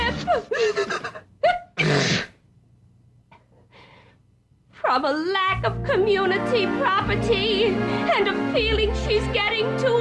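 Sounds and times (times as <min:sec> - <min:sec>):
single loud sneeze with halting voiced intakes: 0:00.7 - 0:02.4
speech: 0:05.0 - 0:09.9.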